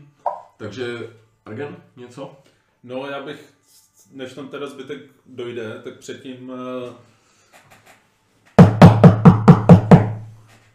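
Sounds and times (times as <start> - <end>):
speech: 0.6 - 7.1
knocks on an open wooden door: 8.6 - 10.2.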